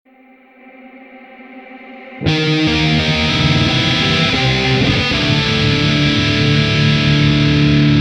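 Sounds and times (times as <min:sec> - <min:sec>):
dark metal ringtone: 0:02.2 - 0:07.9.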